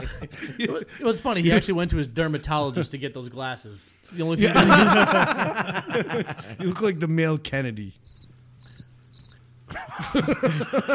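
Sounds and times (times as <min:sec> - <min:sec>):
laughter: 0:00.0 - 0:01.8, 0:04.4 - 0:06.9, 0:09.7 - 0:10.9
speech: 0:00.1 - 0:08.1, 0:10.0 - 0:10.9
cricket chirps: 0:08.0 - 0:09.6.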